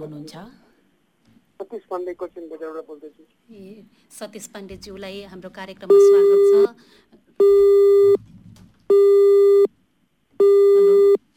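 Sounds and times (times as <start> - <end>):
speech: 0.0 - 0.6, 1.6 - 8.2
telephone busy signal after a call drops: 5.9 - 6.7, 7.4 - 8.2, 8.9 - 9.7, 10.4 - 11.2.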